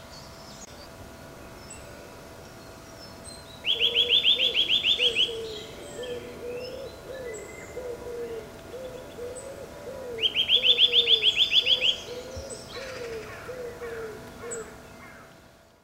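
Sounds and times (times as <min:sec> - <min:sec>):
other birds chirping faintly: 0:00.2 - 0:13.7
Eurasian nuthatch Sitta europaea piping notes: 0:00.7 - 0:14.8
dove cooing low: 0:03.6 - 0:15.3.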